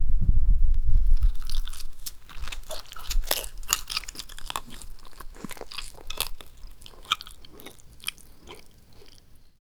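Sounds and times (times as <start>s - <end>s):
cow eating grass chewing: 0.9s - 9.5s.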